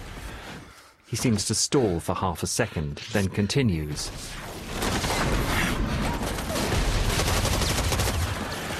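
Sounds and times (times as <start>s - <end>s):
speech: 1.1s - 4.5s
machine gun fire in a video game battle on a bleak urban battlefield: 4.7s - 8.7s.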